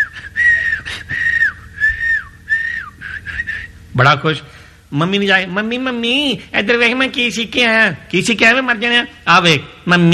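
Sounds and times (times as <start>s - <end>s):
person whistling a tune: 0.0s - 3.8s
speech: 4.0s - 10.1s.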